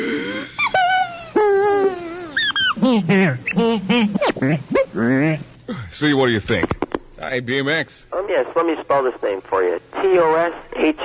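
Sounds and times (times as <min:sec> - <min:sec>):
labored wheezing breathing: 0:00.0 - 0:02.8
speech: 0:02.8 - 0:11.0.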